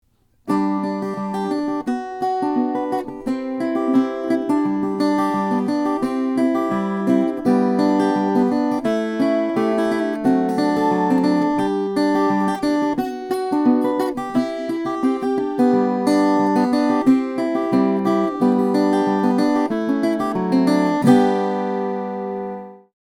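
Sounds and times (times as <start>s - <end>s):
mahogany terz guitars: 0.1s - 22.9s.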